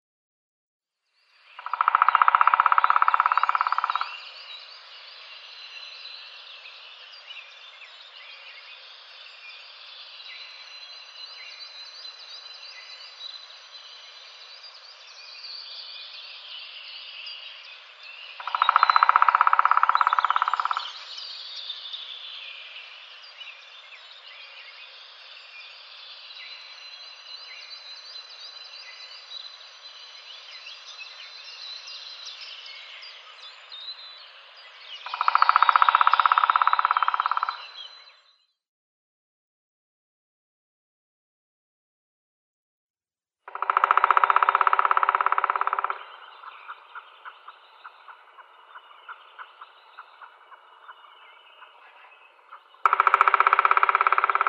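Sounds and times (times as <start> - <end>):
black woodpecker drumming: 1.6 - 4.1, 18.4 - 21.0, 35.0 - 37.8, 43.5 - 47.0, 52.5 - 54.4.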